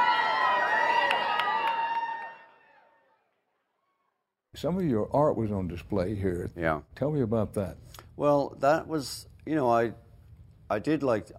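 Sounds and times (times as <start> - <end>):
crowd of fans roaring and cheering: 0.0 - 3.2
speech: 4.6 - 10.0, 10.7 - 11.3.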